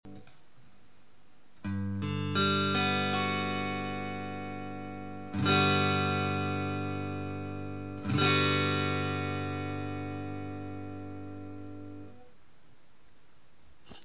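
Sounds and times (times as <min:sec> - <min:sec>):
G major seventh guitar chord: 0:01.7 - 0:12.3.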